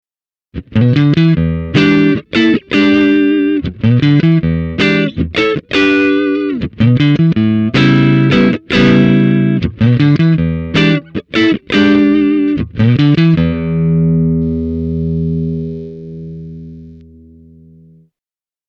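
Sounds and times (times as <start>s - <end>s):
Squier Stratocaster clean electric guitar with humbucker: 0.6s - 18.1s.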